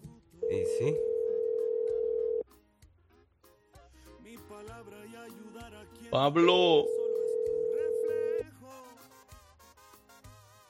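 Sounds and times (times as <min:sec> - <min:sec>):
telephone ringing tone: 0:00.4 - 0:02.4, 0:06.7 - 0:08.4
speech: 0:00.8 - 0:01.1, 0:04.9 - 0:07.0.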